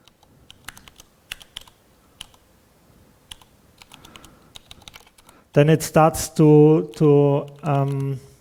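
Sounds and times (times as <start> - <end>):
computer keyboard keys clacking while typing in Vim: 0.0 - 2.4, 3.3 - 5.3, 6.9 - 8.1
speech: 5.6 - 8.3.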